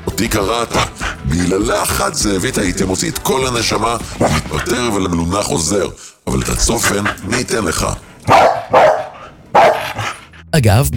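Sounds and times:
speech: 0.2s - 8.8s, 10.5s - 10.9s
dog barking: 8.3s - 10.2s.

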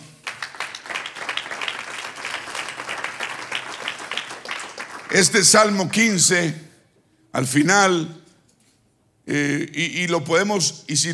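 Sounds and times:
crowd applauding: 0.0s - 5.8s
speech: 5.1s - 6.7s, 7.4s - 8.2s, 9.3s - 11.1s.

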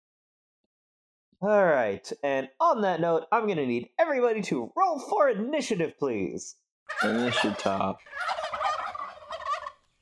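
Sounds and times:
speech: 1.4s - 8.4s
giant turkeys gobbling: 6.9s - 9.9s.

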